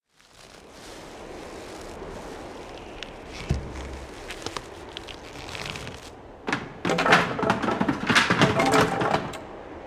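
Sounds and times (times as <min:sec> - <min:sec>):
bridge collapsing: 0:03.0 - 0:09.8.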